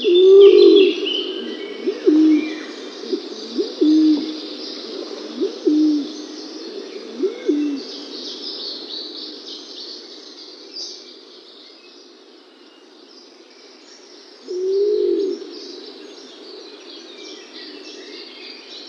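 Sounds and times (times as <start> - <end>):
male laurel pigeon display calls: 0.0 - 8.2, 14.5 - 16.0.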